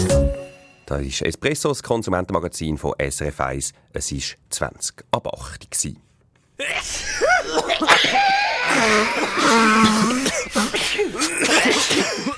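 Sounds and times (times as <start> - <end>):
speech: 0.9 - 12.3
people coughing: 6.6 - 12.3
people sneezing: 6.6 - 12.3
voiced gasps and groans: 6.6 - 12.3
people sniffling: 8.1 - 12.3.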